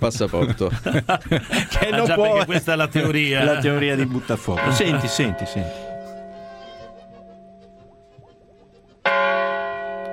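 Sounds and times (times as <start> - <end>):
speech: 0.0 - 5.9
laughter: 0.0 - 9.2
church bells ringing: 4.0 - 10.1.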